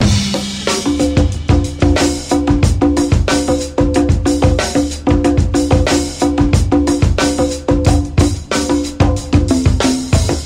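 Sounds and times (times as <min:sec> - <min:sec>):
heavy bongo drum loop: 0:00.0 - 0:10.4.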